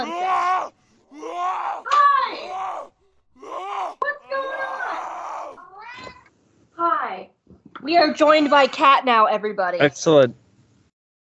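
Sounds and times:
cat screaming in long wailing yowls: 0.0s - 6.2s
speech: 7.9s - 10.4s.

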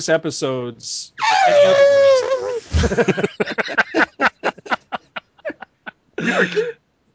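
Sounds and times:
speech: 0.0s - 3.8s
elephant trumpeting: 1.2s - 2.8s
laughter: 1.3s - 6.7s.

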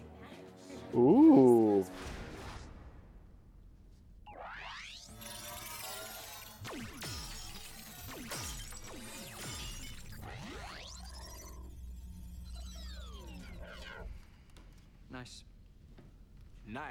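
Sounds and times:
busy noise: 0.0s - 16.8s
speech: 0.9s - 1.2s, 15.2s - 15.5s
sci-fi blaster shots at a shooting range: 6.6s - 11.6s.

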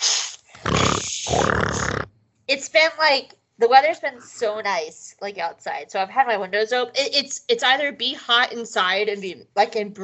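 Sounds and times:
person blowing nose hard: 0.0s - 2.1s
speech: 2.8s - 10.0s.

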